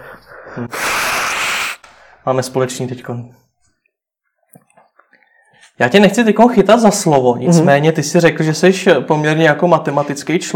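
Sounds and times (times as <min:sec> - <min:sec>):
forceful nose blowing: 0:00.0 - 0:02.2
person breathing: 0:00.0 - 0:02.3
speech: 0:00.6 - 0:01.2, 0:02.2 - 0:03.4, 0:05.7 - 0:10.5.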